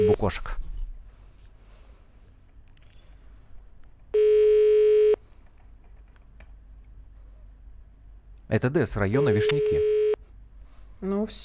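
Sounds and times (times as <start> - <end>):
speech: 0.0 - 0.6, 8.5 - 10.0, 11.0 - 11.4
faint noise: 0.0 - 11.4
telephone ringback tone: 4.2 - 5.2, 9.2 - 10.2.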